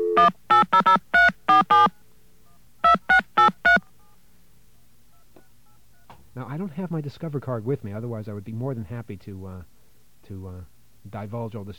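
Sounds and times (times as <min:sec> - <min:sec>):
touch-tone telephone dialing a number for a credit card service line: 0:00.0 - 0:04.2
speech: 0:06.7 - 0:11.7.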